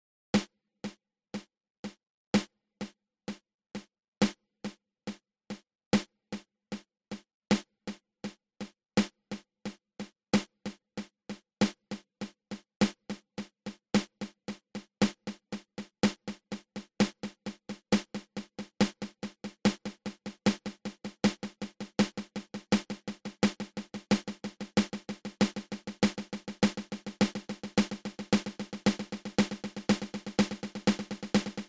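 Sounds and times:
single paradiddle drum rudiment: 0:00.4 - 0:31.6.

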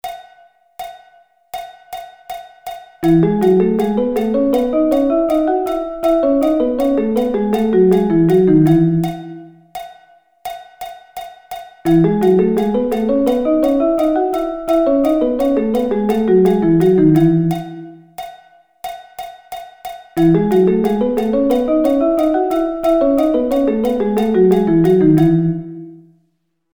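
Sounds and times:
thirds on E: 0:03.0 - 0:09.5, 0:11.9 - 0:18.0, 0:20.2 - 0:25.9.

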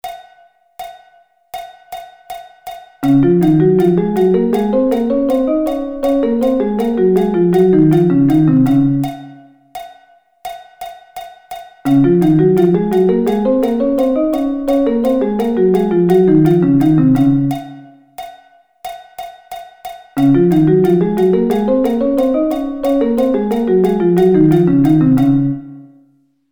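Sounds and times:
musical thirds in D flat: 0:03.0 - 0:09.2, 0:11.9 - 0:17.8, 0:20.2 - 0:25.8.

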